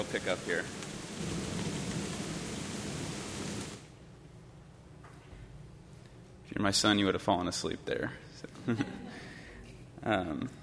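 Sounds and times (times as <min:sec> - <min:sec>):
speech: 0:00.0 - 0:01.6, 0:06.6 - 0:09.3, 0:10.0 - 0:10.6
deep rolling rumble of thunder: 0:00.0 - 0:03.9
dense steady rain in a thunderstorm: 0:00.0 - 0:04.0.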